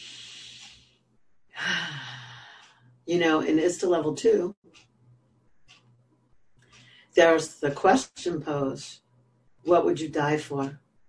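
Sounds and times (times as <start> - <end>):
deep breath: 0.0 - 1.0, 1.6 - 3.0, 6.6 - 7.2
speech: 3.1 - 4.9, 7.2 - 9.0, 9.6 - 10.8.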